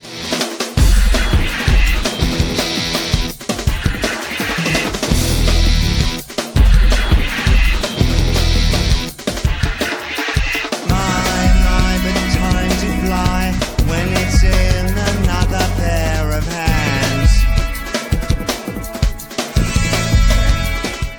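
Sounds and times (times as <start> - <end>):
mono music at low bitrate: 0.0 - 21.1.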